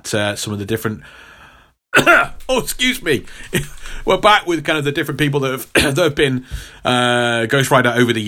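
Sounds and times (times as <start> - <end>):
speech: 0.1 - 8.2
person coughing: 2.0 - 4.6, 5.6 - 6.5.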